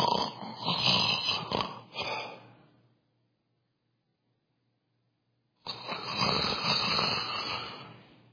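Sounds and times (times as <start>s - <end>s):
voice imitating snoring: 0.0s - 2.4s, 5.6s - 8.0s.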